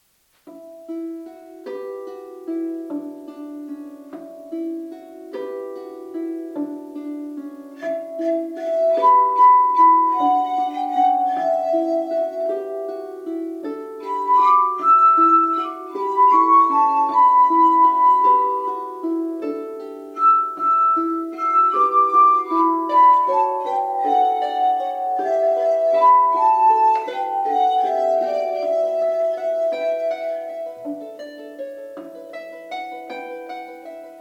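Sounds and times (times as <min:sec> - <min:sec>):
harp: 0:00.0 - 0:34.1.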